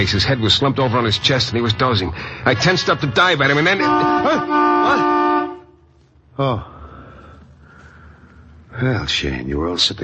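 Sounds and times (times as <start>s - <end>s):
speech: 0.0s - 5.2s, 6.4s - 6.7s, 8.8s - 10.0s
loud car horn honking: 2.4s - 5.9s.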